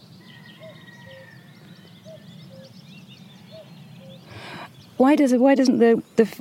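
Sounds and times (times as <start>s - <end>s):
cuckoo calling its two-note cuck-oo: 0.0s - 5.1s
willow warblers and reed buntings twittering and chirping: 0.0s - 6.3s
speech: 5.0s - 6.3s.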